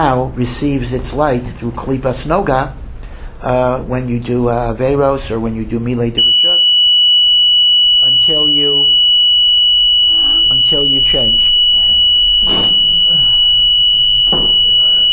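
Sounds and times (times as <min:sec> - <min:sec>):
speech: 0:00.0 - 0:06.4, 0:08.3 - 0:08.8, 0:10.7 - 0:11.5, 0:12.4 - 0:12.8
smoke alarm high-pitched tone: 0:06.2 - 0:15.1.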